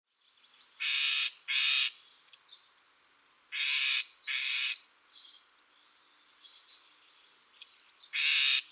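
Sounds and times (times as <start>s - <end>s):
great grey shrike harsh grating calls: 0.8s - 2.0s, 3.5s - 4.8s, 8.1s - 8.7s.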